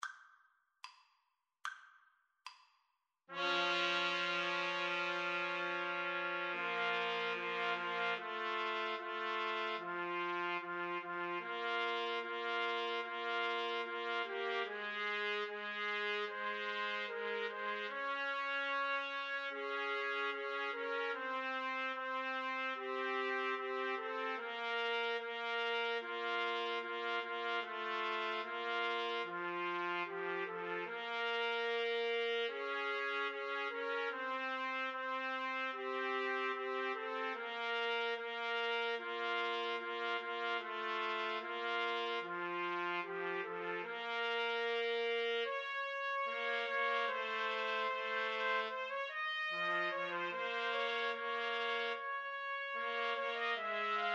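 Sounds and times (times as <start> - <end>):
trumpet trio playing classical symphony movement: 3.3 - 54.1.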